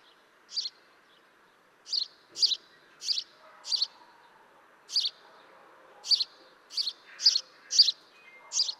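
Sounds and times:
House sparrow giving short bright chirps, Passer domesticus: 0.0 - 4.0, 4.9 - 5.2, 6.0 - 8.7
faint background noise: 0.0 - 8.7.

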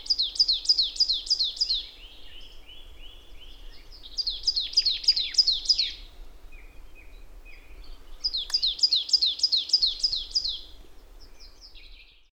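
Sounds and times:
marsh tit calling, Poecile palustris: 0.0 - 2.0, 4.1 - 6.0, 8.2 - 10.7.

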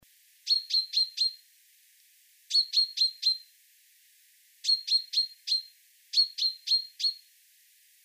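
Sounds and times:
Common chaffinch sharp clipped metallic calls: 0.5 - 1.4, 2.5 - 3.5, 4.6 - 7.3.

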